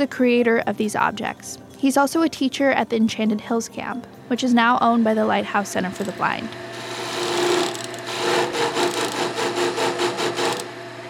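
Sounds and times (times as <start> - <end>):
speech: 0.0 - 6.9
power tool cutting through wood in a workshop: 5.9 - 10.9.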